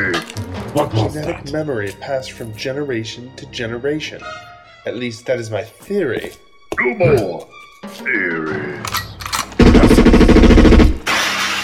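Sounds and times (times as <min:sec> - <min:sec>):
speech: 0:00.7 - 0:08.9
rapid gunfire: 0:09.6 - 0:11.6.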